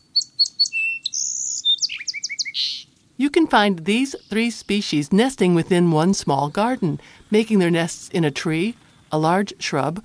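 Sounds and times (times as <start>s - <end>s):
song sparrow singing: 0.0s - 10.0s
speech: 3.2s - 10.0s.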